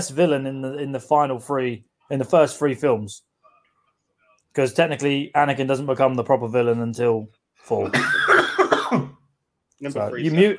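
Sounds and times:
speech: 0.0 - 3.3, 4.5 - 8.3, 9.8 - 10.5
person coughing: 7.8 - 9.2.

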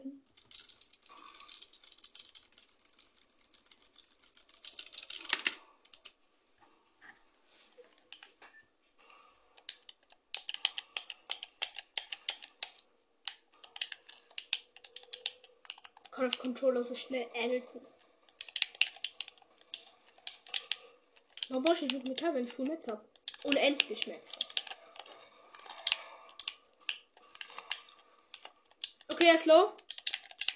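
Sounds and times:
typing on a computer keyboard: 0.4 - 6.2, 9.6 - 16.6, 17.8 - 30.5
speech: 16.2 - 18.0, 21.6 - 24.5, 29.2 - 29.8.

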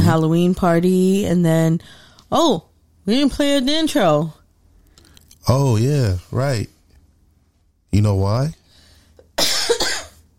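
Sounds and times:
speech: 0.1 - 4.4, 5.5 - 6.7, 7.9 - 8.6
harsh rough cough: 9.2 - 10.2.

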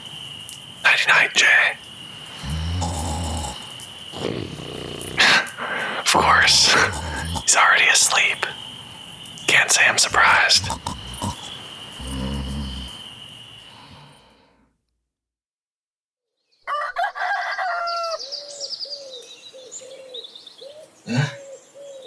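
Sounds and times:
low breathy sigh: 0.9 - 8.6, 9.5 - 13.0, 21.1 - 21.4
speech: 1.0 - 1.8, 6.2 - 8.6, 9.6 - 11.0
rooster crowing: 16.7 - 18.2.

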